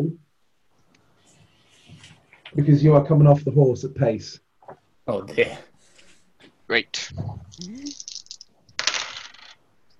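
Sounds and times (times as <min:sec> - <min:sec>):
speech: 0:02.5 - 0:04.4, 0:05.1 - 0:05.7, 0:06.7 - 0:08.0
dice rattling and clattering across a table: 0:07.5 - 0:09.7.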